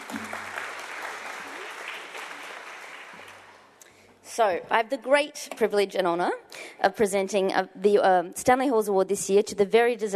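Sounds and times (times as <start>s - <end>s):
crowd applauding: 0.0s - 3.8s
speech: 4.4s - 10.1s.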